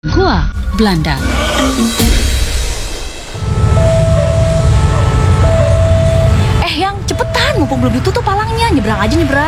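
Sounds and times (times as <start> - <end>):
speech: 0.0 - 2.2, 7.6 - 9.4
sustained tonal notes: 0.6 - 9.4
train passing at a level crossing: 1.1 - 9.4
constant noisy background: 3.3 - 9.4.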